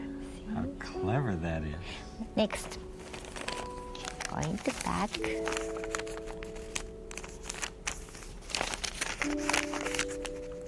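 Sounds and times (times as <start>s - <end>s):
speech: 0.8s - 2.9s, 4.3s - 5.9s, 9.2s - 9.8s
crisp paper crinkling and rustling as it is folded into origami: 2.6s - 10.6s.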